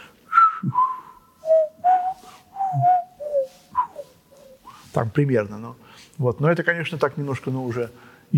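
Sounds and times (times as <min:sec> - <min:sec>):
person whistling the main theme of a concerto: 0:00.3 - 0:04.8
speech: 0:05.0 - 0:08.3.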